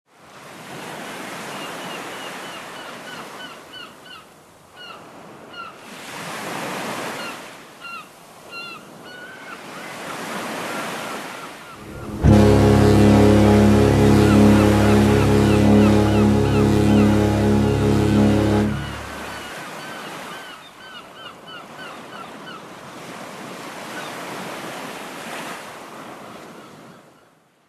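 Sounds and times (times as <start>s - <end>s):
cruise ship waves: 11.8s - 19.7s.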